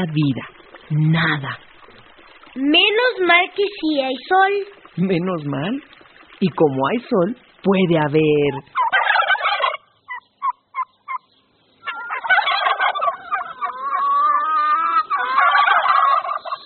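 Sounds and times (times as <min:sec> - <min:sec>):
speech: 0:00.0 - 0:01.7, 0:02.6 - 0:08.8
turkey gobbling and clucking: 0:08.5 - 0:16.6.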